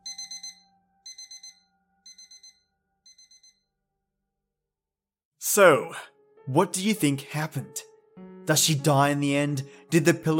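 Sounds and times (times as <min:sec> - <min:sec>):
alarm clock beeping in high-pitched bursts: 0:00.0 - 0:03.8
speech: 0:05.5 - 0:07.9, 0:08.5 - 0:10.3.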